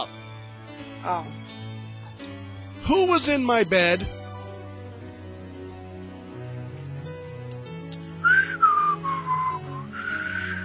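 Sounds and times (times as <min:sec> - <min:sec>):
speech: 0:01.0 - 0:01.7, 0:02.8 - 0:04.2
person whistling a short wavering tune: 0:08.2 - 0:10.6.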